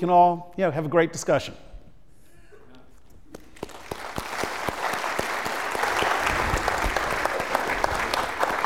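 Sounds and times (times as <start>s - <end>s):
speech: 0.0s - 1.7s
audience applause for a speaker after a talk: 3.5s - 8.6s.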